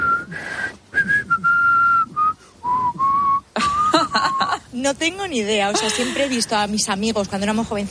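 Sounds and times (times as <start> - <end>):
person whistling an anthem tune: 0.0 - 3.5
speech: 4.8 - 7.9.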